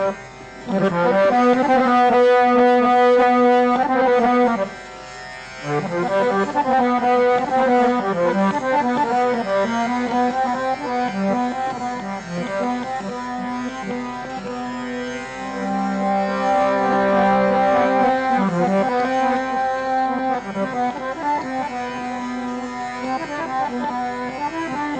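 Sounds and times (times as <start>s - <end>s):
harmonium playing thumri in raga Tilang: 0.0s - 24.9s.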